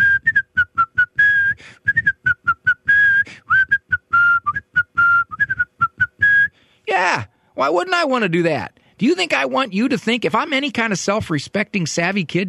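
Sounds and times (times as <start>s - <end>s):
person whistling a bouncy tune: 0.0s - 6.6s
speech: 7.0s - 12.4s.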